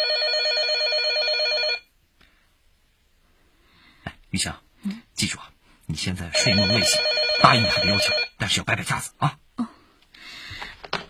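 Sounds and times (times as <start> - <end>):
telephone ringing with electronic tone: 0.0 - 1.9, 6.4 - 8.4
speech: 4.3 - 9.4.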